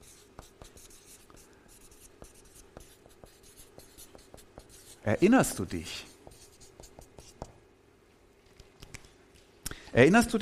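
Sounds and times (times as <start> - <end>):
pen writing by hand on paper: 0.0 - 5.0, 6.2 - 7.5
speech: 5.0 - 6.1, 10.0 - 10.4.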